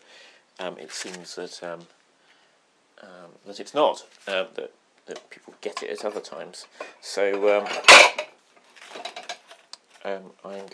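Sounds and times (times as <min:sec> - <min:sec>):
speech: 0:00.6 - 0:02.0, 0:03.0 - 0:08.3, 0:10.0 - 0:10.7
dishes and cutlery clinking while food is plated: 0:07.3 - 0:08.3.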